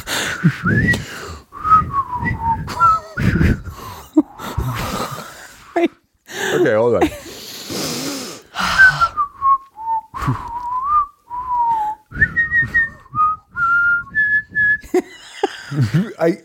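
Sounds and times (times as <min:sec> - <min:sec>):
noisy breaths: 0:00.0 - 0:09.4, 0:11.3 - 0:13.1
speech: 0:00.4 - 0:01.3
person whistling a short tune: 0:00.4 - 0:03.7, 0:08.6 - 0:15.0.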